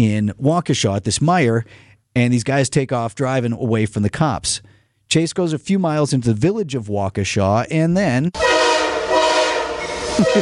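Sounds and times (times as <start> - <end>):
speech: 0.0 - 8.6, 10.2 - 10.4
train horn blaring at an at-grade crossing in Waukesha: 8.4 - 10.4.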